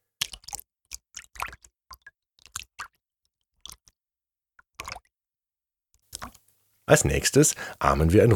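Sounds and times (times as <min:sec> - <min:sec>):
hands splashing and sloshing water in a bowl: 0:00.2 - 0:04.0, 0:04.6 - 0:05.1, 0:06.1 - 0:06.5
speech: 0:06.9 - 0:08.3.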